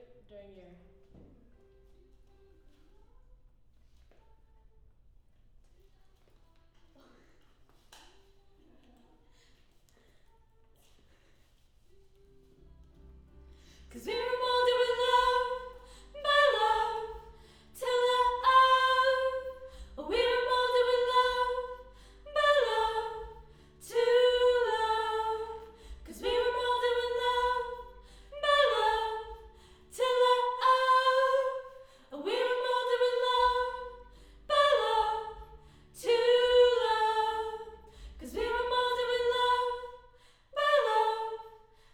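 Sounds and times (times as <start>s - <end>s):
choir harmony in high and mid register: 12.7s - 41.9s.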